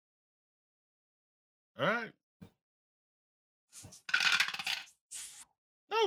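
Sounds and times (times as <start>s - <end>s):
speech: 1.8s - 2.2s, 3.8s - 4.2s
d20 dice thrown and rolled across a surface: 3.8s - 5.0s.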